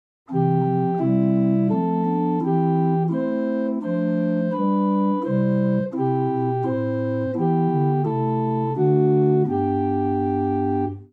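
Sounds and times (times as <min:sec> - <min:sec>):
organ playing a chorale: 0:00.3 - 0:11.1.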